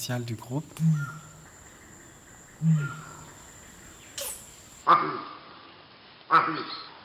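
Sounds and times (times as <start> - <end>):
speech: 0.0 - 1.3, 2.6 - 3.2, 4.9 - 5.3, 6.3 - 6.8
insects buzzing: 0.0 - 4.9
male monkey hok intimidation alarm calls: 0.7 - 5.2.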